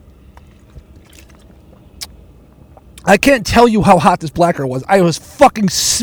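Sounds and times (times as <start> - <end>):
person sipping water: 0.0 - 3.1
faint clicks: 0.0 - 3.4
swallowing: 0.0 - 5.8
speech: 3.0 - 6.0.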